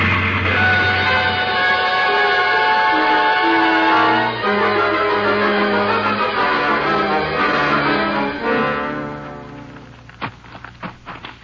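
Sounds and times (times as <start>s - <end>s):
train engine laboring up a grade: 0.0s - 10.2s.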